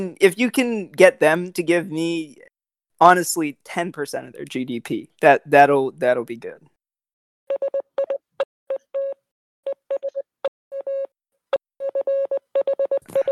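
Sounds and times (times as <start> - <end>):
speech: 0.0 - 2.4, 3.0 - 6.7
electronic Morse code tone beeps: 7.5 - 11.1, 11.8 - 13.2.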